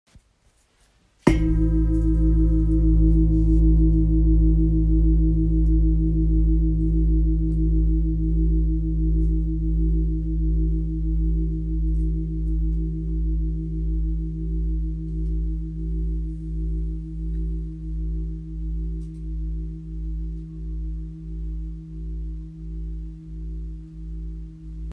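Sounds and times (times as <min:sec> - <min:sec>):
deep engraved singing bowl tuned to A: 0:01.3 - 0:24.9.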